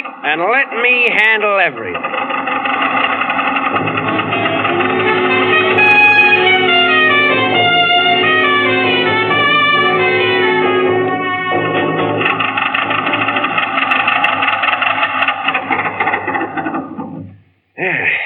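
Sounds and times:
car engine running: 0.0 - 17.5
speech: 0.2 - 3.1.

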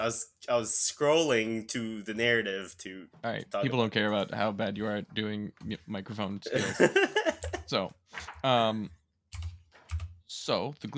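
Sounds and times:
speech: 0.0 - 9.4, 10.3 - 10.9
laughter: 6.5 - 7.6
loud computer keyboard typing: 9.4 - 10.1.

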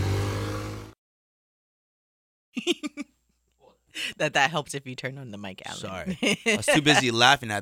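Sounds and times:
moped driving past outside: 0.0 - 1.0
laughter: 2.6 - 3.0, 5.9 - 7.2
speech: 2.6 - 3.1, 4.0 - 7.6.

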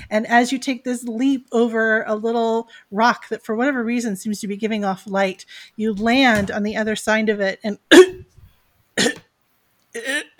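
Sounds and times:
speech: 0.1 - 8.2, 9.0 - 9.2, 10.0 - 10.3
person coughing as if choking on sausage: 7.9 - 8.3, 9.0 - 9.3, 10.0 - 10.3.

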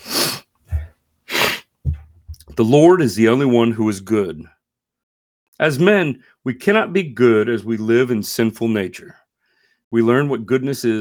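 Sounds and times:
person sneezing: 0.0 - 1.7
sharp intake of breath: 0.0 - 1.7
speech: 2.6 - 4.6, 5.6 - 9.2, 9.9 - 11.0.

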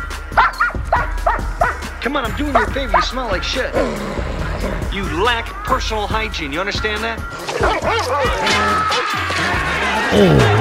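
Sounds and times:
dog barking and yipping: 0.3 - 1.9, 2.5 - 3.5, 7.4 - 9.4
speech: 2.0 - 10.5
laughter: 7.4 - 10.5.

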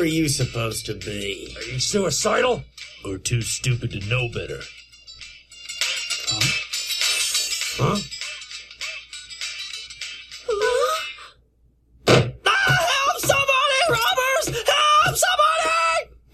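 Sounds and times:
speech: 0.0 - 4.8, 6.3 - 6.6
person wailing: 10.5 - 11.3, 12.4 - 16.1
thud: 12.0 - 12.4
person screaming: 12.4 - 16.1.

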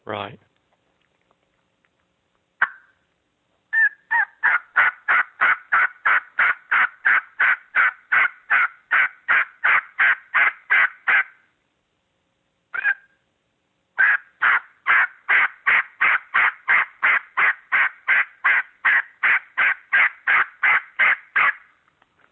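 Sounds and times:
speech: 0.1 - 0.5
turkey yelps made on a hunting call during turkey hunting: 2.6 - 3.0, 3.7 - 11.4, 12.7 - 13.2, 14.0 - 21.7.

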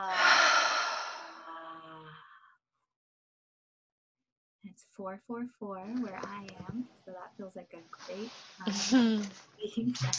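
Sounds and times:
deep breath drawn in through the nose and let out as a sigh: 0.0 - 2.6
speech: 4.7 - 10.1.

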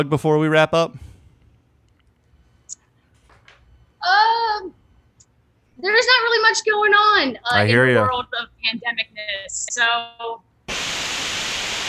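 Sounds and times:
speech: 0.0 - 1.1, 5.8 - 10.5
hissing TV-like static interference on call audio: 10.7 - 11.8.

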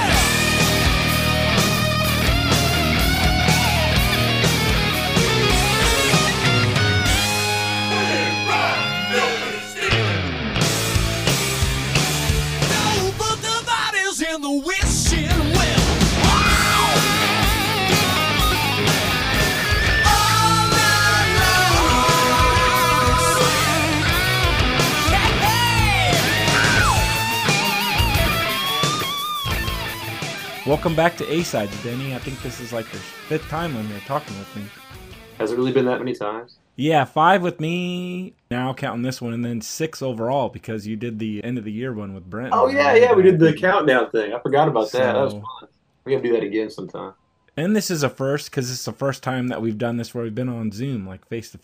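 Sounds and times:
rock music with driving guitars and drums: 0.0 - 36.0
speech: 30.8 - 51.6.

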